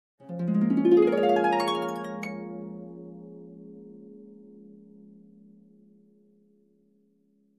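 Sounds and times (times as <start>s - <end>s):
upward harp glissando: 0.3s - 4.4s.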